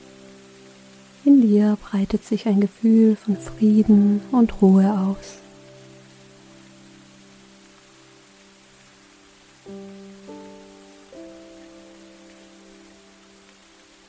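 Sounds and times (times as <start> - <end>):
steady falling rain in a rainforest: 0.0 - 14.0
speech: 1.4 - 5.4.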